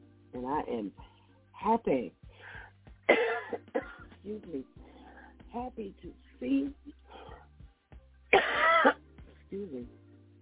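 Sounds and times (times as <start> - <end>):
speech: 0.4 - 2.2, 4.2 - 4.9, 5.5 - 7.0, 8.6 - 10.0
person with a lingering week-long cough coughing: 3.1 - 4.1, 8.4 - 9.0.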